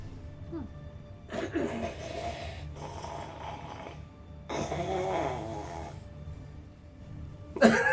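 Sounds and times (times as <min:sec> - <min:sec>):
person imitating deep rhythmic snoring: 0:01.4 - 0:06.1.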